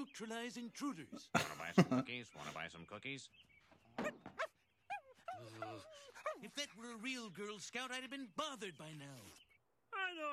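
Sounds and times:
speech: 0:00.0 - 0:04.5, 0:05.4 - 0:10.3
laughter: 0:01.1 - 0:02.6, 0:05.2 - 0:06.8
dog yelping: 0:04.0 - 0:06.5.

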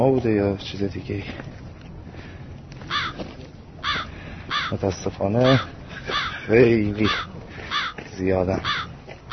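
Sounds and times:
speech: 0:00.0 - 0:01.7, 0:04.7 - 0:07.4, 0:08.2 - 0:08.9
crows cawing in Qom during summer heat: 0:02.1 - 0:09.3.

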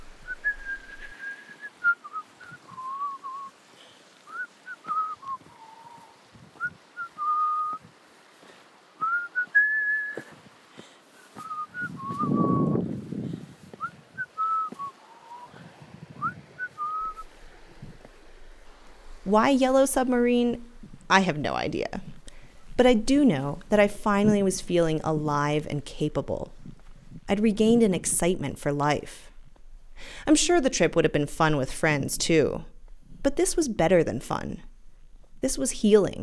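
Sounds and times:
person whistling a cheerful melody while hiking in a canyon in Moab: 0:00.4 - 0:03.5, 0:04.3 - 0:07.8, 0:09.0 - 0:10.4, 0:11.3 - 0:12.8, 0:13.8 - 0:15.5, 0:16.2 - 0:17.2
speech: 0:19.3 - 0:22.1, 0:22.8 - 0:26.6, 0:27.3 - 0:29.3, 0:30.0 - 0:34.7, 0:35.4 - 0:36.2.

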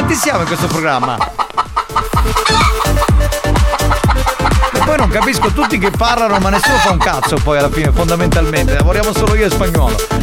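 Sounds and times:
speech: 0:00.1 - 0:01.4, 0:02.2 - 0:03.0, 0:04.9 - 0:10.2
chicken squawking and clucking: 0:00.1 - 0:07.4.

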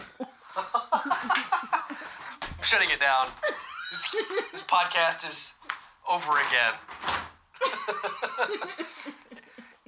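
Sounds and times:
several people laughing loudly: 0:00.0 - 0:02.4, 0:03.4 - 0:04.7, 0:07.6 - 0:09.8
door slamming shut: 0:02.4 - 0:03.4, 0:06.3 - 0:07.4
speech: 0:02.7 - 0:06.9, 0:07.9 - 0:08.9.

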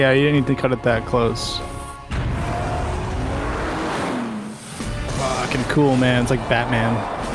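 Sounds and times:
speech: 0:00.0 - 0:01.7, 0:05.5 - 0:07.2
car engine revving loudly as it roars past: 0:02.0 - 0:07.3
steady rushing road noise: 0:02.3 - 0:07.3.

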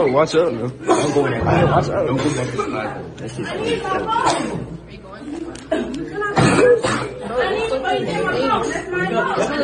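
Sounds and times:
speech: 0:00.0 - 0:05.9, 0:07.4 - 0:09.6
several students chattering over each other: 0:00.0 - 0:09.6
students coughing sharply: 0:00.8 - 0:03.0, 0:03.6 - 0:04.8, 0:05.7 - 0:07.4.

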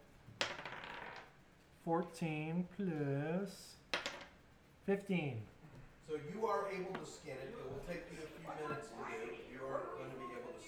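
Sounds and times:
dice tumbling onto a table: 0:00.3 - 0:01.4, 0:03.9 - 0:04.4
speech: 0:01.8 - 0:03.8, 0:04.8 - 0:10.6.

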